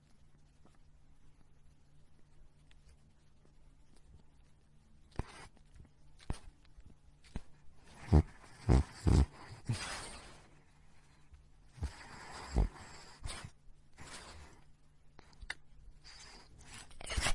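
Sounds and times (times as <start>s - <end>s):
small dog snoring: 8.0s - 10.2s, 11.8s - 14.3s.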